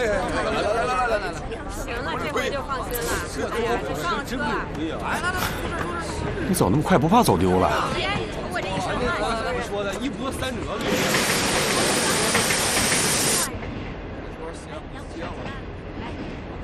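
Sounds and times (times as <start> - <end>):
crowd chatter on a station platform: 0.0 - 16.6
steam locomotive hissing steam in a station: 10.8 - 13.5.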